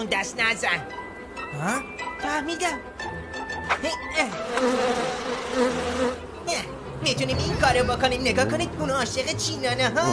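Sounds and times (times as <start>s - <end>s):
speech: 0.0s - 10.1s
bees buzzing: 4.3s - 6.4s.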